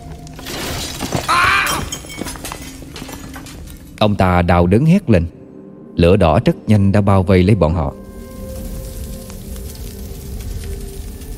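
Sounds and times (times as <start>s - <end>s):
stack of clay pots tipping over in a gust of wind and shattering: 0.4s - 3.6s
speech: 4.0s - 5.4s, 6.0s - 8.0s.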